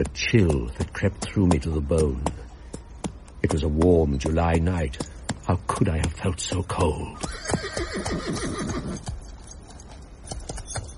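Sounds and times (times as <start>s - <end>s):
speech: 0.0s - 2.4s, 3.4s - 9.2s
quiet rustle: 0.0s - 10.9s
horse whinnying: 7.2s - 9.1s.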